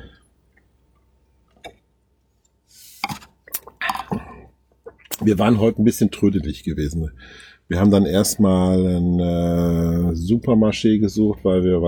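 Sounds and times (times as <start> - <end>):
glasses clinking during a toast: 3.8 - 4.5
speech: 5.2 - 11.8.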